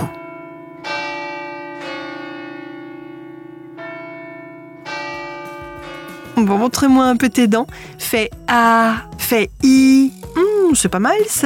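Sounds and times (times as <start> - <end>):
church bells ringing in a steady peal: 0.0 - 9.0
speech: 6.4 - 11.4.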